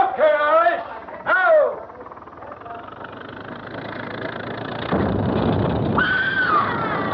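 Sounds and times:
steady rumbling noise: 0.0 - 7.1
high-pitched scream: 6.0 - 7.1.

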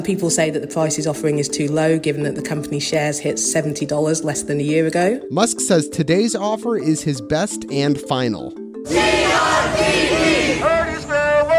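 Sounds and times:
speech: 0.0 - 10.2
crowd of protesters chanting and shouting against police: 8.9 - 11.5.

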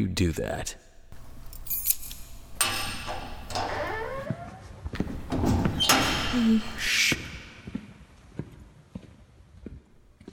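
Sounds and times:
speech: 0.0 - 0.8, 6.4 - 7.1
keys jangling: 1.1 - 4.0
door sliding clank: 1.2 - 4.4, 5.2 - 6.8.

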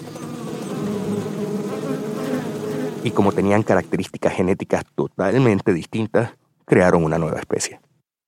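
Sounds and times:
swarm of honeybees buzzing: 0.0 - 4.2
speech: 3.0 - 7.9.

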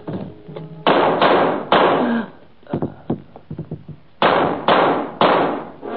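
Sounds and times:
gunshots: 0.8 - 2.2, 4.2 - 5.8.

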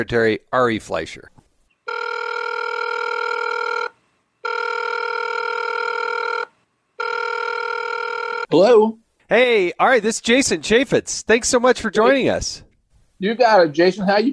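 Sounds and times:
speech: 0.0 - 1.3, 8.5 - 14.3
electronic ring tones of an outgoing phone call: 1.8 - 8.5.

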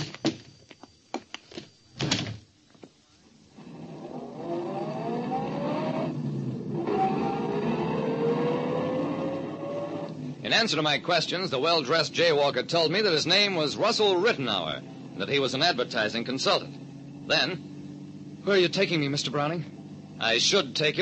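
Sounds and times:
sharp clicks and thuds: 0.0 - 3.0
car engine turning over, revving and pulling away: 3.5 - 21.0
speech: 10.5 - 17.7, 18.4 - 21.0.

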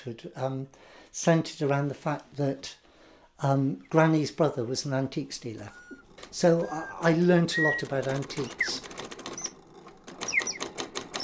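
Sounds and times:
speech: 0.0 - 2.8, 3.4 - 9.0
small clockwork mechanism of an antique automaton bird clicking: 6.0 - 11.2
short high whistled chirps of an automaton bird: 10.2 - 10.6.

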